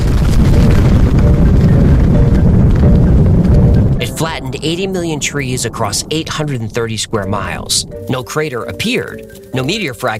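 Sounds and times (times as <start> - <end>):
massive explosion over Siberia at Tunguska: 0.0 - 8.0
loud sustained deep rumble: 0.0 - 9.8
speech: 4.4 - 10.1.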